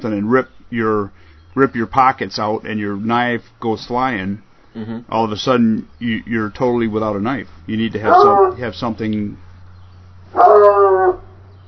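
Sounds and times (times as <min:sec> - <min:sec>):
speech: 0:00.0 - 0:09.4, 0:10.3 - 0:11.2
dog barking or yowling: 0:08.0 - 0:08.6, 0:10.4 - 0:11.4.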